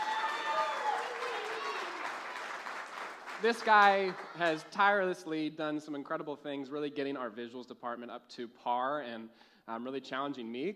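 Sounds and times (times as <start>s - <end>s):
crowd applauding: 0.0s - 4.7s
speech: 3.4s - 10.7s.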